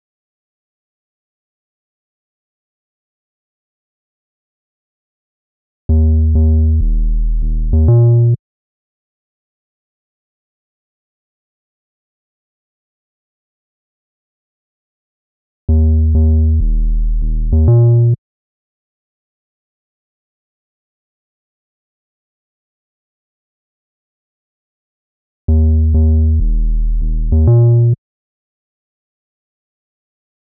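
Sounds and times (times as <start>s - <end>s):
sub bass: 5.9s - 8.4s, 15.7s - 18.2s, 25.5s - 28.0s.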